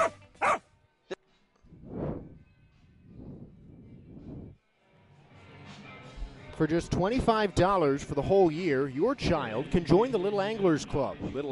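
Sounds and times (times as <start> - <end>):
several dogs barking: 0.0 - 0.6
speech: 6.6 - 11.4.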